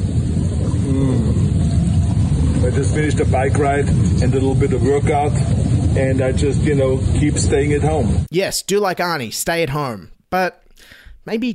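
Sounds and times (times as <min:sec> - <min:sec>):
water churning and bubbling in a home jacuzzi: 0:00.0 - 0:07.9
speech: 0:02.7 - 0:11.5.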